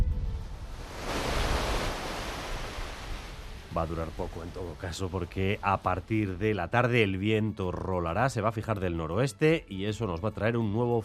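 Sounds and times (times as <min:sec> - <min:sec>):
steady rushing water of a stream or cascade: 0:00.6 - 0:06.6
speech: 0:03.8 - 0:11.0.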